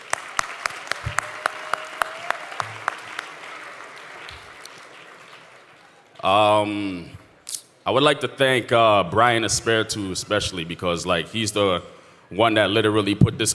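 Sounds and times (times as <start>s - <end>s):
sharp regular claps: 0.0s - 5.8s
loud cheer or whoop: 0.0s - 6.2s
crowd applauding: 0.0s - 6.5s
speech: 6.2s - 7.2s, 7.9s - 13.5s.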